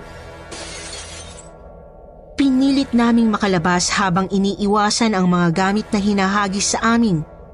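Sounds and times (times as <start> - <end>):
glass shattering: 0.5 - 1.6
speech: 2.6 - 7.3.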